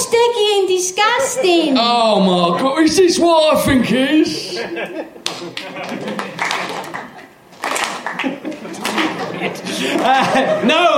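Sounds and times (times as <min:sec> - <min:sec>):
speech: 0:00.2 - 0:06.4, 0:09.4 - 0:10.9
laughter: 0:04.1 - 0:10.9
person clapping slowly: 0:05.2 - 0:10.2.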